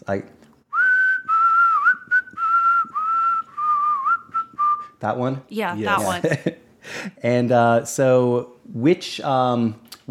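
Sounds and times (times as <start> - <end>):
speech: 0.1 - 0.5, 5.0 - 10.1
person whistling a short melodic film tune: 0.7 - 5.0
faint breathy sound: 6.8 - 7.2.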